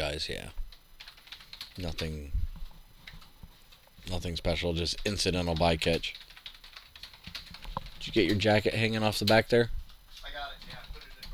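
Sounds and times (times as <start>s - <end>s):
speech: 0.1s - 0.6s, 1.8s - 2.4s, 4.0s - 6.2s, 8.0s - 9.8s
typing on a computer keyboard: 1.0s - 2.2s, 3.0s - 3.8s, 5.1s - 11.3s.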